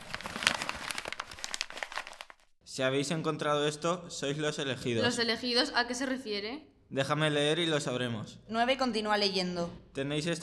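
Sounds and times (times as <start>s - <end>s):
paper sheet being unfolded and handled: 0.0s - 2.5s
speech: 2.8s - 10.4s.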